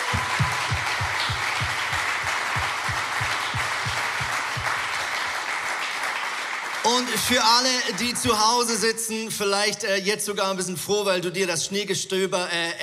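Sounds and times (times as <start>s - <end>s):
rhythmic low thumping beat: 0.0s - 5.4s
crowd applauding: 0.0s - 8.8s
speech: 6.9s - 12.8s.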